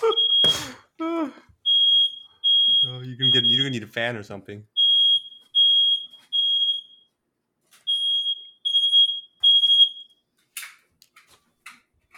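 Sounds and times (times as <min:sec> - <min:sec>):
smoke detector alarm beeping: 0:00.0 - 0:00.8, 0:01.6 - 0:04.0, 0:04.7 - 0:07.2, 0:07.8 - 0:10.3
speech: 0:03.2 - 0:04.8.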